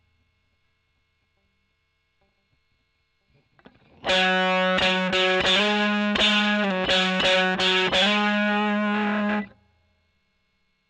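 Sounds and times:
overdriven electric guitar: 0:03.6 - 0:09.6.

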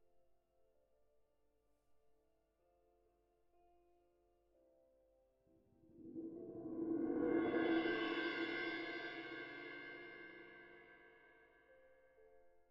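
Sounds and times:
cymbal: 0:05.9 - 0:11.2.

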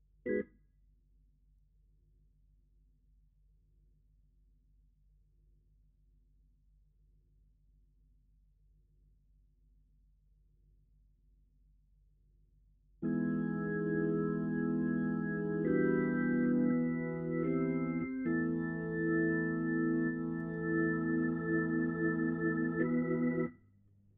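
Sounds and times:
Hammond organ: 0:13.0 - 0:23.5.

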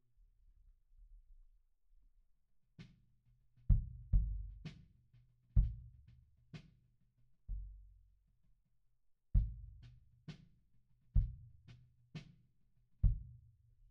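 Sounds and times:
kick drum beat at 96 bpm: 0:03.7 - 0:04.7, 0:05.6 - 0:06.1, 0:09.4 - 0:09.9, 0:11.2 - 0:11.6, 0:13.0 - 0:13.4.

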